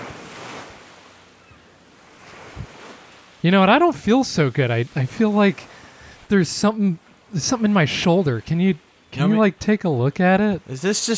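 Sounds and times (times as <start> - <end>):
ocean surf washing onto the shore at a beach: 0.0 - 11.1
gusty wind rumbling against the microphone: 2.4 - 2.8
speech: 3.4 - 11.1.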